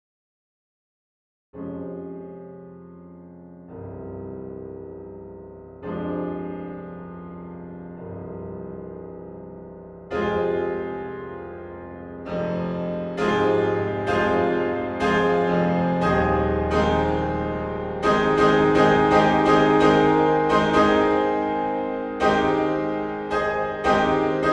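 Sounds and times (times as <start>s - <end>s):
piano concerto: 1.6s - 24.5s.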